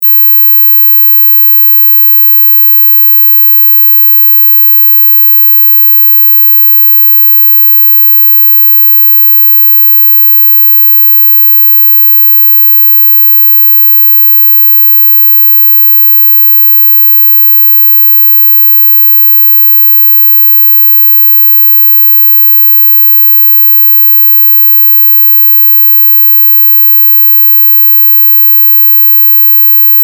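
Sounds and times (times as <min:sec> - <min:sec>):
18000 Hz sine wave: 0:00.0 - 0:30.0.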